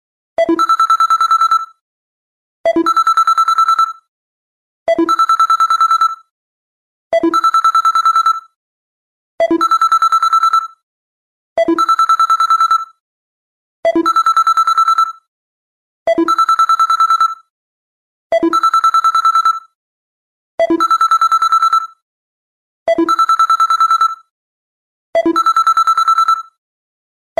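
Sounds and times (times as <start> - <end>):
phone bell ringtone: 0.5 - 1.8, 2.8 - 4.0, 4.9 - 6.2, 7.2 - 8.5, 9.5 - 10.8, 11.7 - 13.0, 14.0 - 15.2, 16.2 - 17.4, 18.4 - 19.7, 20.7 - 22.0, 22.9 - 24.3, 25.2 - 26.6.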